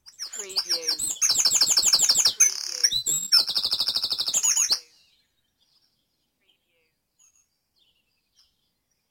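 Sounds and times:
dawn chorus birdsong in Mold, North Wales: 0:00.0 - 0:09.1.

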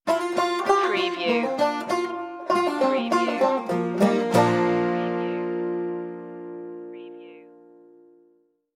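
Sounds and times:
banjo stinger: 0:00.1 - 0:06.8.

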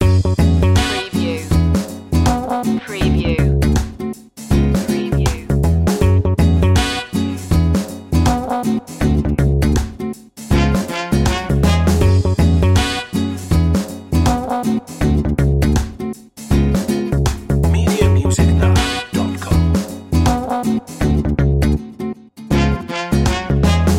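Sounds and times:
Spanish mood music loop: 0:00.0 - 0:23.9.

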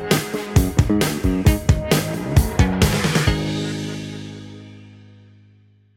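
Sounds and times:
musical stinger: 0:00.2 - 0:05.1.

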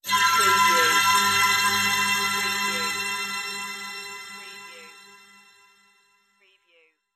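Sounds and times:
arcade game bonus item collect jingle: 0:00.1 - 0:05.5.

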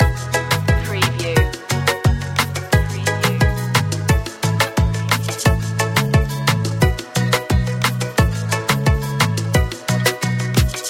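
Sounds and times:
dancehall music loop: 0:00.0 - 0:10.8.

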